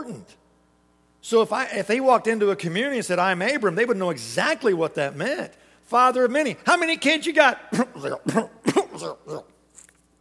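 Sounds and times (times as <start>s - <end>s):
speech: 0.1s - 0.4s, 1.2s - 9.5s
man clearing his throat: 7.9s - 9.5s
man coughing hoarsely: 8.0s - 9.5s.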